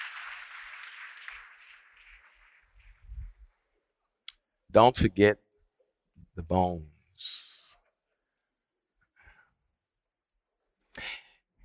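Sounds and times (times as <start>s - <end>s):
church audience clapping in praise: 0.0s - 3.8s
speech: 4.7s - 5.4s, 6.4s - 7.5s.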